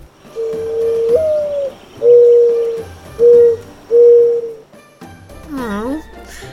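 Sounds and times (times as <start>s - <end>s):
mourning dove cooing: 0.3s - 4.6s.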